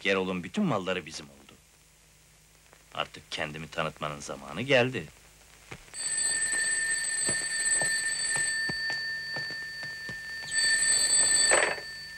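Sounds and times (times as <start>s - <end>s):
speech: 0.0s - 1.4s, 2.9s - 5.2s
telephone ringing loudly: 6.0s - 12.1s.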